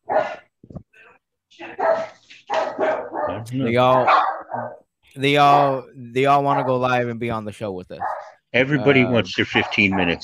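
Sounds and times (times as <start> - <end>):
dogs barking: 0.0 - 0.5, 1.7 - 4.9, 6.5 - 6.9, 8.0 - 8.4, 9.4 - 10.2
speech: 3.3 - 4.3, 5.2 - 10.2.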